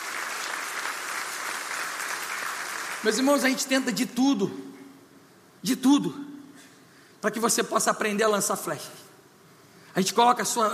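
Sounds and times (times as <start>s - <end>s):
church congregation applauding: 0.0s - 4.0s
speech: 3.0s - 4.7s, 5.6s - 6.2s, 7.2s - 9.0s, 10.0s - 10.7s.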